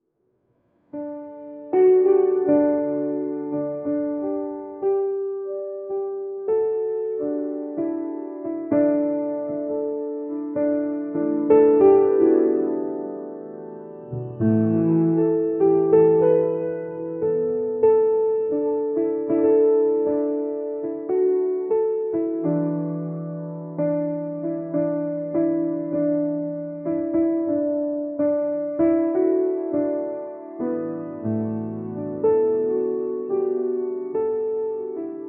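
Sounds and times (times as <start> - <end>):
calming piano playing: 0.9 - 35.2.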